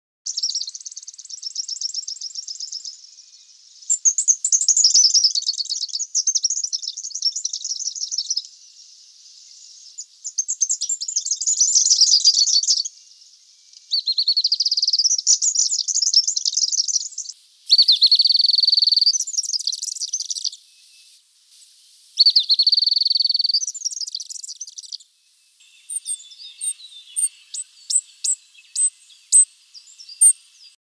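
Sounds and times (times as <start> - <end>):
superb fairy wren in a Canberra garden: 0.3 - 30.8.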